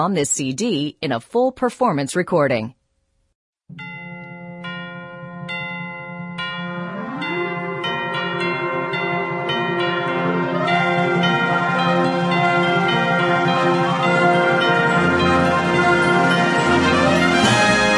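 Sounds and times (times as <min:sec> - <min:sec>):
speech: 0:00.0 - 0:02.8, 0:03.7 - 0:03.9
handbell choir ringing: 0:03.8 - 0:17.9
concert band playing sustained chords: 0:06.8 - 0:17.9.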